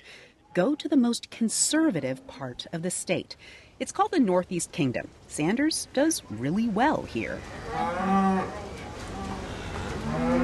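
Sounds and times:
speech: 0.5 - 8.2
dairy cows mooing while being milked on a dairy farm in Vermont: 7.6 - 10.4.

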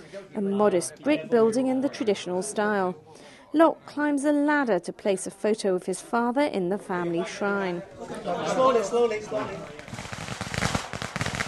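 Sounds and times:
speech: 0.1 - 10.1
fireworks exploding during a visit to family graves: 9.2 - 11.4.

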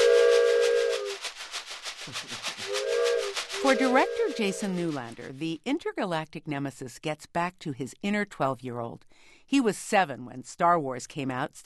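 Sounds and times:
child's toy train whistle blowing a breathy two-tone hoot: 0.0 - 1.2, 2.7 - 4.8
rhythmic rasping shake: 0.0 - 5.7
speech: 3.6 - 11.6.

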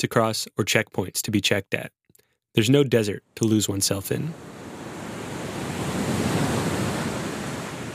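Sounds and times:
speech: 0.0 - 2.0, 2.6 - 4.6
steady ocean surf roaring: 4.2 - 7.9
windy rush: 4.3 - 7.9.

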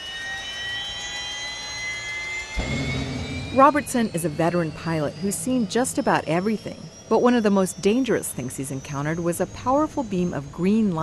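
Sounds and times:
police helicopter turbine engine starting up: 0.0 - 11.0
brief low thump: 2.6 - 5.8
speech: 3.6 - 11.0.

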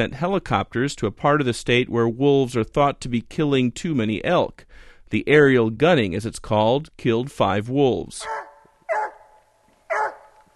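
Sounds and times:
speech: 0.0 - 8.5
hunting dog barking on rural land outside a small mountain town in Idaho's Clearwater Mountains: 8.2 - 10.5.

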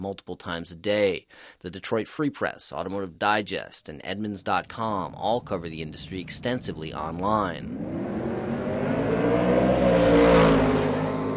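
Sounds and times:
speech: 0.0 - 8.3
American muscle car engine roaring while accelerating down a drag strip at Milan Dragway: 4.6 - 11.3.

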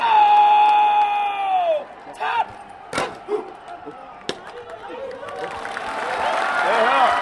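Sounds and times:
hundreds of spectators roaring and shouting at flag-lowering ceremony: 0.0 - 7.1.

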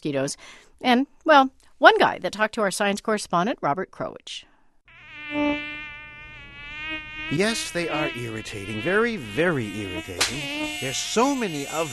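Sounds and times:
speech: 0.0 - 4.5, 7.3 - 11.9
mosquitoes buzzing: 4.9 - 11.9.

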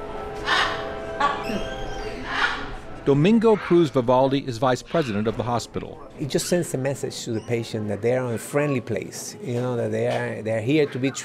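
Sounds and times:
brightly colored parrots squawking at a children's hospital entrance in Puerto Rico: 0.4 - 8.7
speech: 3.1 - 11.2.

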